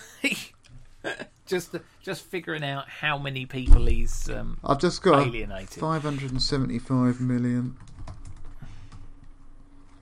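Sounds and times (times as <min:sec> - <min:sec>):
speech: 0:00.2 - 0:07.9
typing on a computer keyboard: 0:07.7 - 0:09.0.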